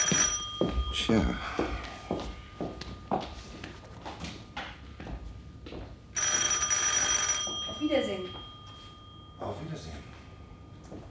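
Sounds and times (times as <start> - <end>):
telephone bell ringing: 0.0 - 2.2, 6.2 - 10.3
soft uneven footsteps: 0.0 - 6.2, 7.5 - 11.1
speech: 0.6 - 1.9.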